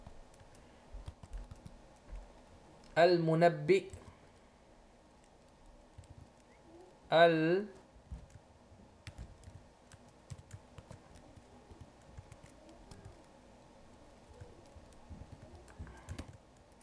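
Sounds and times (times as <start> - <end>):
typing on a computer keyboard: 0.3 - 2.5, 5.2 - 6.6, 9.0 - 16.8
speech: 3.0 - 4.0, 7.1 - 7.8.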